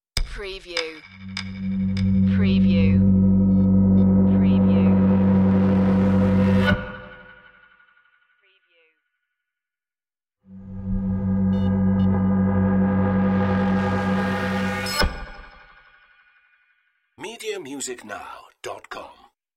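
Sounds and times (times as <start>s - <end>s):
beaming effect: 1.4s - 7.6s, 10.5s - 15.6s.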